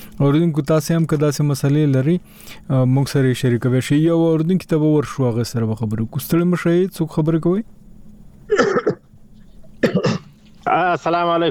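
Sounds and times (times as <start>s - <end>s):
speech: 0.2s - 7.8s, 10.7s - 11.4s
person with a cough coughing: 8.5s - 9.0s, 9.8s - 10.3s.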